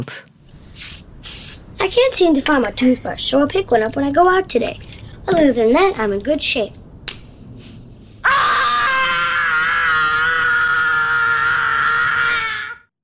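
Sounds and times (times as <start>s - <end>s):
speech: 0.0s - 0.9s, 1.8s - 6.8s
sharp smack: 7.1s - 7.3s
young boy screaming in a film scene: 8.2s - 12.9s.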